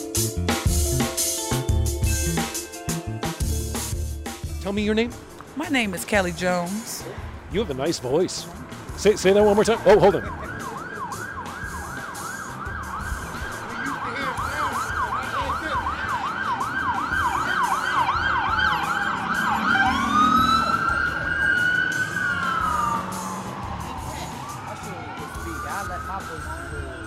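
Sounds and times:
traffic noise: 0.2s - 27.0s
speech: 4.7s - 10.4s
emergency vehicle siren passing: 8.3s - 27.0s.

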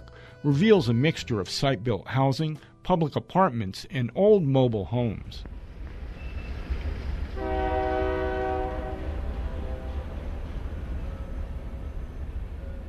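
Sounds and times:
speech: 0.4s - 5.6s
train rumbling past around Cristo Rey in Sunland Park New Mexico: 5.4s - 12.8s
loud multi-tone train horn blaring: 7.4s - 10.3s.

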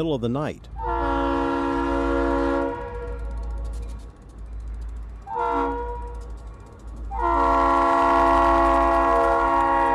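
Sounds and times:
speech: 0.0s - 1.0s
passing train rumbling: 0.0s - 9.9s
train horn blasts at crossing: 0.8s - 3.4s, 5.2s - 6.2s, 7.1s - 9.9s.

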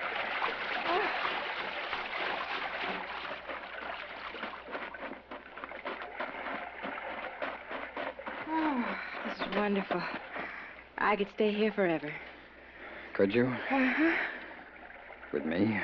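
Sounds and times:
two people swimming and splashing in a calm gently rolling sea: 0.0s - 11.0s
speech: 9.6s - 10.2s, 11.0s - 12.3s, 13.2s - 14.3s, 15.3s - 15.8s.

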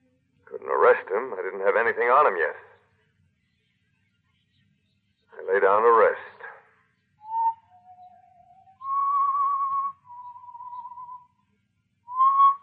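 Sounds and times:
speech: 0.7s - 2.7s, 5.6s - 6.2s
person whistling a slow tune alone: 7.3s - 11.3s, 12.1s - 12.6s.

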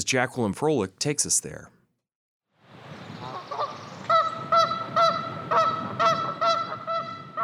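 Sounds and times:
speech: 0.1s - 1.8s
gaggle of geese honking on lake banks: 3.2s - 7.4s.

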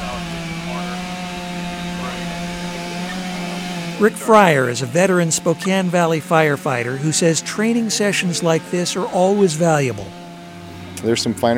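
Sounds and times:
chainsaw running in a firefighter training drill: 0.0s - 11.5s
speech: 4.0s - 10.2s, 11.0s - 11.5s.

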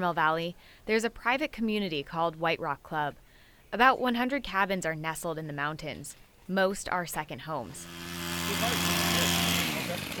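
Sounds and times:
speech: 0.0s - 9.4s
chainsaws cutting low-hanging tree branches in the mountains: 7.6s - 10.1s.

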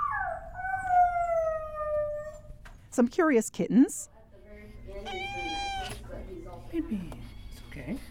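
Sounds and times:
dog howling at an animal shelter: 0.0s - 2.6s, 5.0s - 6.0s
speech: 3.0s - 4.1s, 6.7s - 8.0s.

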